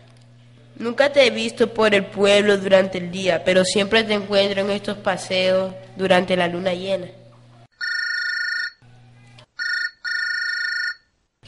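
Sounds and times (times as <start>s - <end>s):
speech: 0.8s - 7.2s
mobile phone ringing in bright electronic bursts: 7.7s - 8.8s, 9.6s - 11.1s.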